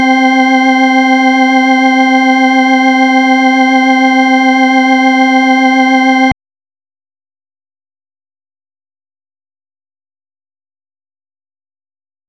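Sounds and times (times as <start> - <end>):
organ: 0.0 - 6.4.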